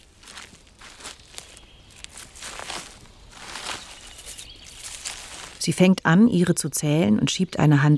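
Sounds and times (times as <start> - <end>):
brisk footsteps on leafy forest ground: 0.0 - 5.7
speech: 5.6 - 7.9.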